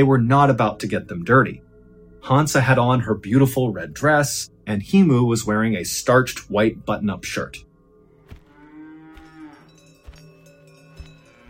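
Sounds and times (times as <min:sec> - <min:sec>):
speech: 0:00.0 - 0:07.7
cows mooing: 0:08.0 - 0:11.4.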